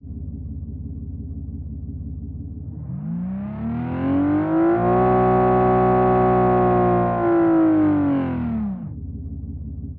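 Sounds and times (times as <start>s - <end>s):
British V12 engine: 2.6s - 9.4s.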